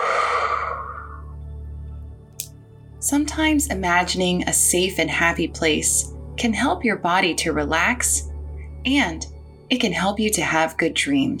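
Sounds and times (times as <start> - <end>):
slow deep breath out during a relaxation exercise: 0.0 - 1.4
low gentle musical hum: 0.9 - 11.3
speech: 3.1 - 11.3.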